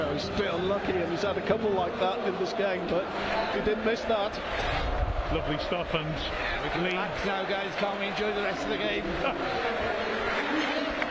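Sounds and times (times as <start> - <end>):
large football stadium crowd murmur: 0.0 - 11.0
speech: 0.2 - 10.1
large football stadium crowd clapping for a substitution: 6.6 - 11.0.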